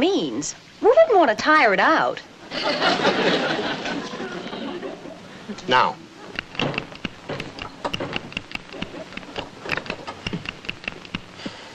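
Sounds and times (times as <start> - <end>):
speech: 0.0 - 4.2, 5.6 - 6.0
laughter: 2.5 - 5.9
malfunctioning electrically operated door clicking, tapping and rattling: 6.3 - 11.3.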